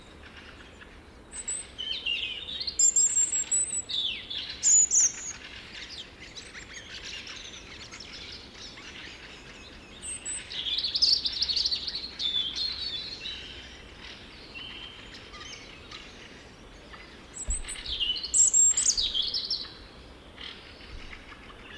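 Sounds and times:
European robin song: 0:00.0 - 0:21.7
low background noise: 0:00.0 - 0:21.7.

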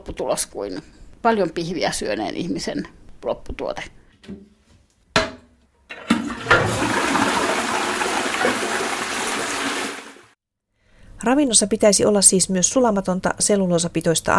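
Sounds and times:
speech: 0:00.1 - 0:04.5, 0:11.2 - 0:14.3
toilet flushing: 0:05.9 - 0:10.4.

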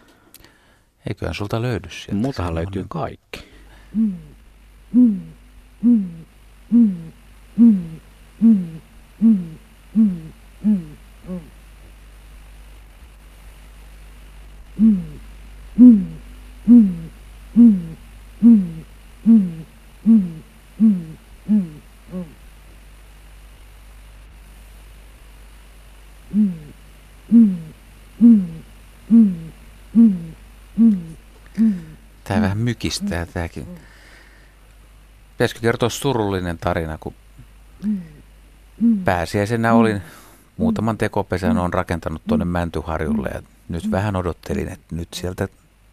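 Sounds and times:
speech: 0:01.0 - 0:04.3, 0:04.9 - 0:11.5, 0:31.6 - 0:33.9, 0:35.4 - 0:37.2, 0:37.8 - 0:38.2, 0:38.8 - 0:45.6
great grey owl hooting: 0:03.8 - 0:11.6, 0:14.8 - 0:22.4, 0:26.3 - 0:32.0, 0:32.8 - 0:34.0, 0:37.8 - 0:38.2, 0:38.8 - 0:39.4, 0:40.6 - 0:41.0, 0:43.7 - 0:44.1.

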